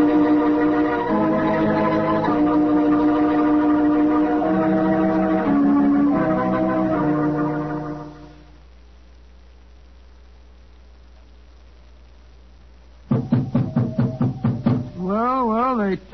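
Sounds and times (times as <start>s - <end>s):
low hum: 0.0s - 16.1s
loud knocking on a wooden door: 13.1s - 15.0s.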